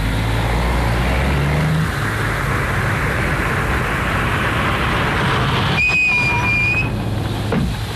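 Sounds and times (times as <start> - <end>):
taxi engine and road noise while driving: 0.0 - 7.9
high-pitched squeal: 2.0 - 7.1.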